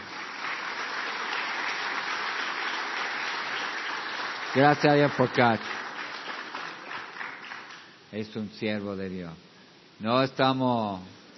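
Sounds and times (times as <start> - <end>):
crowd applauding: 0.0 - 8.0
speech: 4.5 - 5.8, 8.1 - 11.2.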